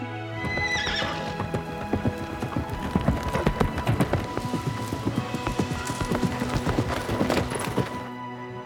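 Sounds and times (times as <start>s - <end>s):
ridden horse galloping with clip-clopping hoofbeats: 0.0s - 8.2s
ridden horse whinnying: 0.4s - 3.9s.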